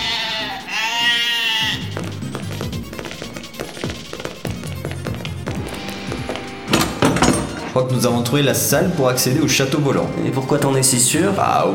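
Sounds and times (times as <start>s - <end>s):
sheep bleating: 0.0s - 2.2s
busy percussive music with sharp clicks and pops: 1.6s - 7.8s
speech: 7.8s - 11.7s.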